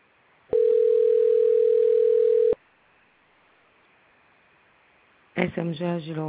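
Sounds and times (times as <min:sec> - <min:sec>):
phone ringing tone while a call connects: 0:00.5 - 0:02.6
speech: 0:05.4 - 0:06.2.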